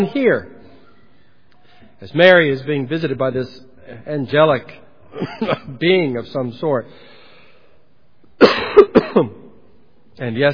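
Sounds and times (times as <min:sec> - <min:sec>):
speech: 0:00.0 - 0:00.5, 0:02.0 - 0:07.1, 0:08.4 - 0:09.4, 0:10.2 - 0:10.5
man coughing: 0:05.1 - 0:05.8, 0:08.4 - 0:09.5.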